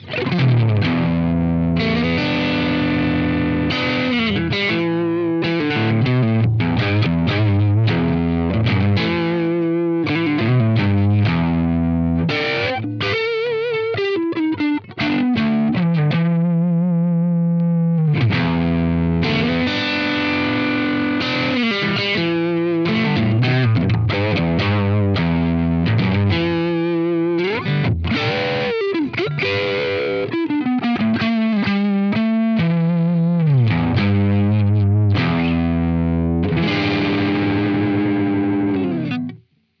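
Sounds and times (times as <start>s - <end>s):
Blackstar Polar 2 crunch guitar amp tone: 0.0s - 39.7s.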